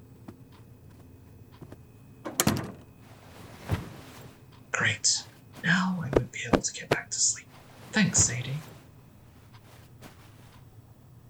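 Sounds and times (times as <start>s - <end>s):
faint shuffling: 0.0s - 11.2s
small knocks: 0.2s - 10.8s
bedroom door swinging shut with a solid thunk and brief rattle: 2.3s - 2.9s
speech: 4.9s - 8.7s.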